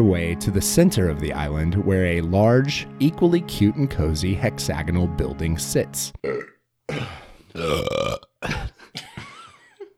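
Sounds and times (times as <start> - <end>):
speech: 0.0 - 8.2
person burping in loud croaking bursts: 6.2 - 9.3.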